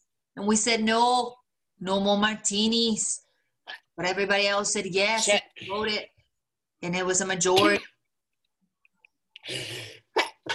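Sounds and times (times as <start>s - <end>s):
speech: 0.4s - 6.1s, 6.8s - 7.9s, 9.4s - 9.8s
person coughing after something went down the wrong way: 7.6s - 8.0s, 9.5s - 10.5s.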